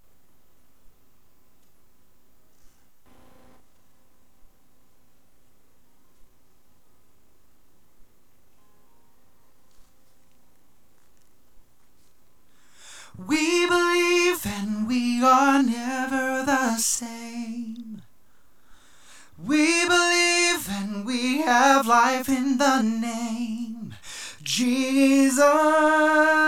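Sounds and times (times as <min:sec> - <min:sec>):
person singing lead vocals: 0:13.1 - 0:18.1, 0:19.3 - 0:26.4.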